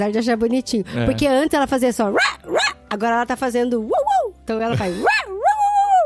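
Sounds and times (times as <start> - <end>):
speech: 0.0 - 5.2
person imitating a small dog barking: 5.0 - 6.0.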